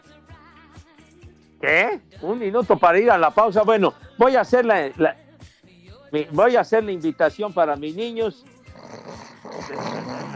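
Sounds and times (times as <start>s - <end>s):
speech: 1.6s - 5.2s, 6.1s - 8.5s
voice imitating snoring: 8.6s - 10.3s.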